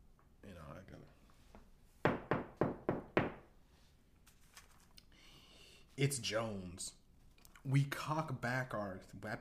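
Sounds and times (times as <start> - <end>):
heavy banging on a door: 2.1 - 3.4
speech: 6.0 - 7.0, 7.6 - 9.4.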